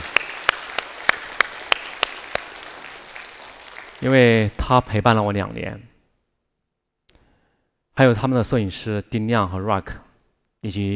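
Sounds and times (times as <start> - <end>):
audience clapping in unison: 0.0 - 5.3
speech: 4.0 - 5.9, 8.0 - 10.0, 10.6 - 10.9.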